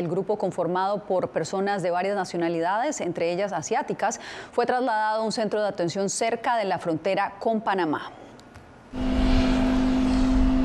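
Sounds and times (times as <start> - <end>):
speech: 0.0 - 8.3
airplane engine roar arriving in Costa Rica: 8.9 - 10.6.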